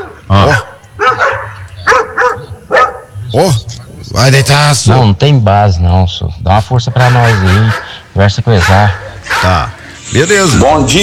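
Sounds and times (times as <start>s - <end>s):
several dogs barking in the street: 0.0s - 4.1s, 6.7s - 10.0s
speech: 3.4s - 11.0s.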